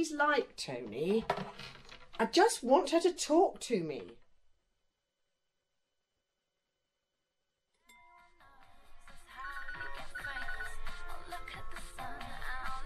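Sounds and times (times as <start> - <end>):
speech: 0.0 - 4.2
phone ringing with a bright melodic electronic ringtone: 9.3 - 11.3.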